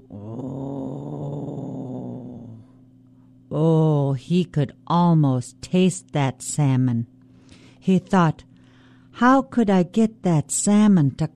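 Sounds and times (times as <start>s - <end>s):
hungry stomach growling: 0.0s - 2.8s
speech: 3.5s - 7.1s, 7.8s - 8.5s, 9.2s - 11.3s.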